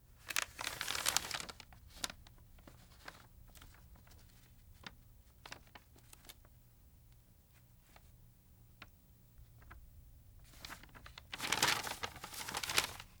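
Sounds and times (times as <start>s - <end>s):
map being handled: 0.3s - 1.6s, 10.6s - 13.1s.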